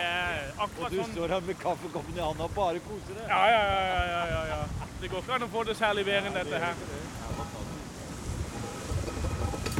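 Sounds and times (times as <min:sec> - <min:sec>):
rushing water: 0:00.0 - 0:09.7
steady wind: 0:00.0 - 0:09.7
speech: 0:00.6 - 0:07.2
sea spray splashing over the bow of a sailboat: 0:06.6 - 0:09.7.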